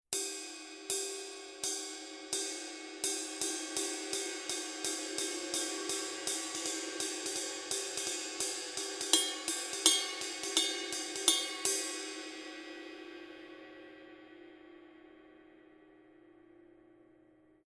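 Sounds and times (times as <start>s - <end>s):
Paiste Color Sound 900 Blue ride cymbal: 0.2s - 13.2s.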